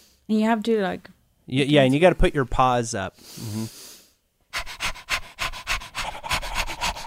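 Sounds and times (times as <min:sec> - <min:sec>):
speech: 0:00.3 - 0:03.9
person imitating a Chihuahua's fast panting breath: 0:04.5 - 0:07.0.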